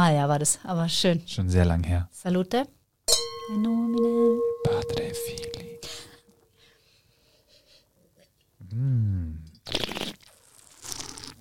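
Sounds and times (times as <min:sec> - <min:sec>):
speech: 0:00.0 - 0:05.6, 0:08.7 - 0:10.0
person humming: 0:03.4 - 0:06.3, 0:08.6 - 0:09.5
slurping wine to aerate it: 0:09.6 - 0:11.3.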